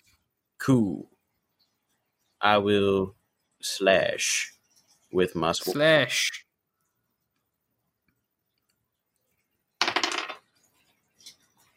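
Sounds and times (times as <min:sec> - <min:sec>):
speech: 0:00.7 - 0:01.1, 0:02.4 - 0:06.4
dice clattering across a hard tabletop in a tabletop game: 0:09.8 - 0:10.6.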